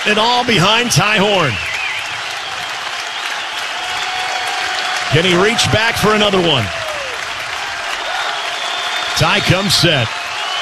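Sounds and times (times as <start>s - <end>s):
speech: 0.0s - 1.7s, 5.1s - 6.8s, 9.2s - 10.2s
large stadium crowd cheering and applauding: 0.0s - 10.5s.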